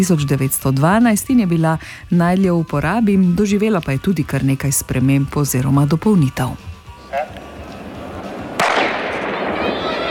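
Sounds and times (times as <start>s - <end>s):
speech: 0.0s - 7.4s
gunshot fired into the air: 8.5s - 10.0s.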